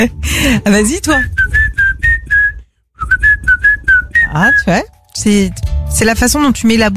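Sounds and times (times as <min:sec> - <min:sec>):
speech: 0:00.0 - 0:01.6, 0:04.3 - 0:06.9
person whistling short melodic phrases: 0:01.1 - 0:04.7.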